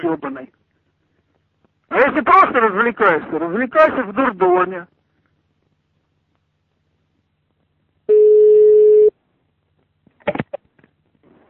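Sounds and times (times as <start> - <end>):
speech: 0.0 - 0.6, 1.9 - 5.0
telephone ringing tone: 8.1 - 9.1.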